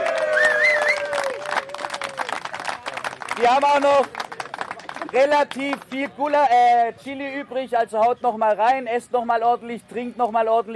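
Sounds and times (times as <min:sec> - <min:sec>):
audience applauding a girls' handball team: 0:00.0 - 0:06.2
whistles: 0:00.3 - 0:01.2
speech: 0:03.4 - 0:04.2, 0:05.1 - 0:10.7.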